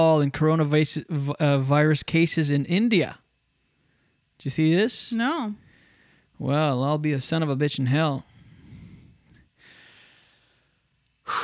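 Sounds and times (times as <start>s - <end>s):
speech: 0.0s - 3.2s, 4.4s - 5.6s, 6.4s - 8.3s
person breathing heavily and deliberately: 8.3s - 11.4s
sharp loud snort-like intake: 11.3s - 11.4s.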